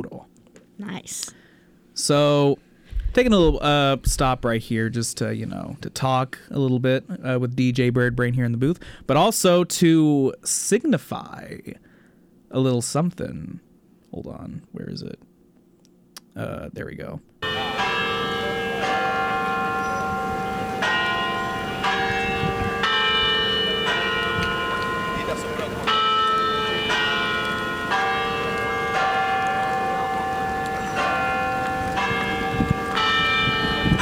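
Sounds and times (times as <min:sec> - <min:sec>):
speech: 0:00.8 - 0:01.4, 0:02.0 - 0:11.9, 0:12.5 - 0:15.3, 0:16.4 - 0:17.6
tower bells ringing: 0:17.4 - 0:34.0.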